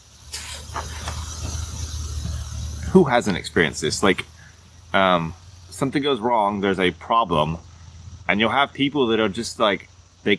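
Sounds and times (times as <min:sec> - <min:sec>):
cats making noise with a breathy hiss: 0:00.3 - 0:02.2
low hum: 0:00.4 - 0:10.3
speech: 0:02.9 - 0:07.7, 0:08.3 - 0:10.3.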